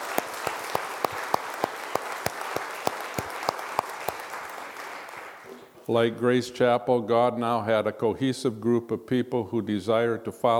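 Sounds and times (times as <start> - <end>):
audience applauding: 0.0 - 5.6
speech: 5.9 - 10.5.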